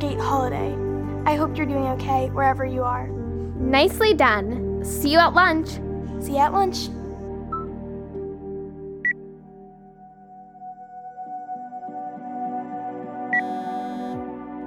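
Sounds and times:
speech: 0.1 - 7.0
phone ringtone for an incoming call: 13.3 - 14.2.

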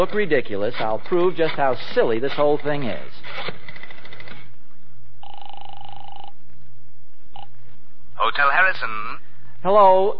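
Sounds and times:
speech: 0.0 - 3.6, 8.3 - 10.1
faint low hum: 0.0 - 10.1
steady electronic telephone ring tone: 5.2 - 6.4.

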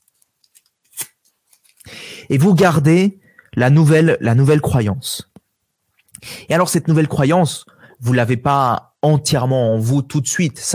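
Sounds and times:
sheet of paper being crumpled: 0.0 - 1.9
speech: 2.2 - 5.3, 6.2 - 10.7.

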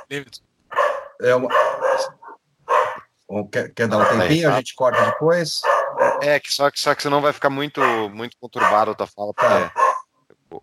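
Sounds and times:
speech: 0.1 - 0.5, 1.2 - 2.2, 3.3 - 9.8
dog barking: 0.7 - 3.1, 3.9 - 6.3, 7.8 - 10.1.

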